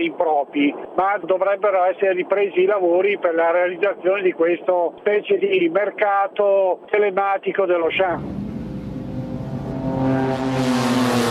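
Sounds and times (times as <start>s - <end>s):
speech: 0.0s - 8.4s
car engines droning on wide roads in a Milan suburb: 7.9s - 11.2s.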